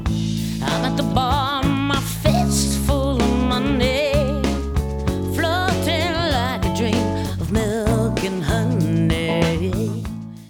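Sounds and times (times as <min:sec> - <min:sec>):
vocals: 0:00.2 - 0:10.4.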